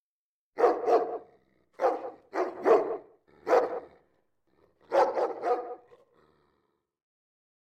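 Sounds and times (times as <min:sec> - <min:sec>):
small dogs barking: 0:00.6 - 0:04.1, 0:04.8 - 0:06.0.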